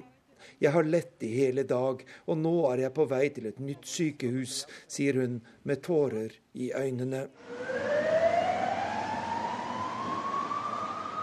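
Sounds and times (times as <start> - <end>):
speech: 0.5 - 7.9
ambulance siren wailing in the Argentine capital after a commuter train accident: 7.4 - 11.2
dense wash of street noise: 7.4 - 11.2.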